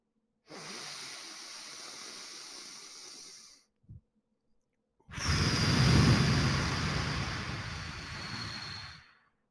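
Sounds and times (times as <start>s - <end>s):
airy exhale pushed out through the mouth: 0.5s - 3.7s, 5.1s - 9.1s
deep breath drawn in through the nose: 0.5s - 3.7s, 5.1s - 9.1s.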